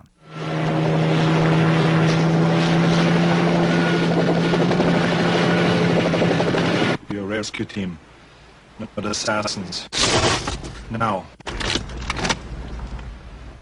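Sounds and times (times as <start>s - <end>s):
helicopter rotor drone and engine hum in action film trailer: 0.0s - 7.0s
speech: 7.6s - 8.1s, 8.8s - 11.4s.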